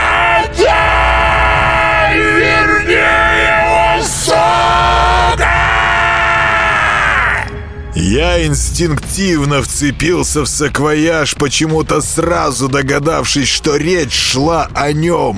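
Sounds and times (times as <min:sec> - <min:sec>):
loud piercing scream with wavering sliding pitch: 0:00.0 - 0:07.6
speech: 0:08.0 - 0:15.3.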